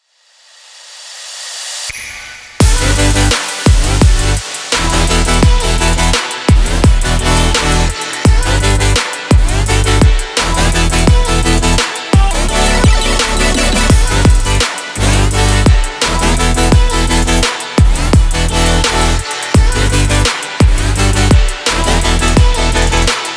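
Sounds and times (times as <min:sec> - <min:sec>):
future bass music: 0:02.6 - 0:23.3.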